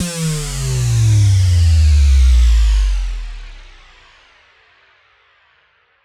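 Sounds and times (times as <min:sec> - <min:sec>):
synthwave loop: 0:00.0 - 0:03.8
sub drop: 0:00.0 - 0:04.0.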